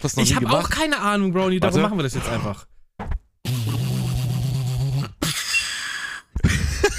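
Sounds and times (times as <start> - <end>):
speech: 0.0 - 2.7
person attempting vocal beatboxing: 3.4 - 5.3
laughter: 6.4 - 6.9.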